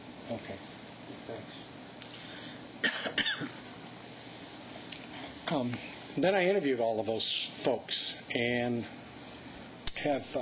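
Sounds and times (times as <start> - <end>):
speech: 0.3 - 1.9, 5.5 - 9.0, 10.0 - 10.3
person coughing harshly: 2.8 - 3.6.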